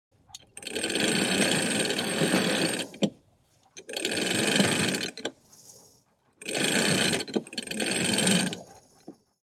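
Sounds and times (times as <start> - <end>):
heavy creaking of a steel winch on a ship exterior: 0.4 - 3.1, 3.8 - 9.1.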